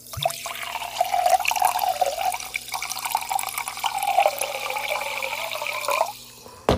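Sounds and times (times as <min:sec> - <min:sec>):
sparkling mineral water pouring into a glass: 0:00.0 - 0:06.4.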